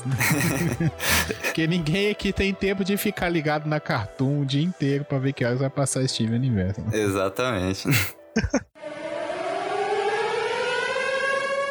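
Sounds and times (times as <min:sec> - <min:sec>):
laughter: 0:00.0 - 0:01.8, 0:07.9 - 0:08.7
speech: 0:00.0 - 0:08.7
siren sound effect with rising pitch: 0:08.8 - 0:11.6.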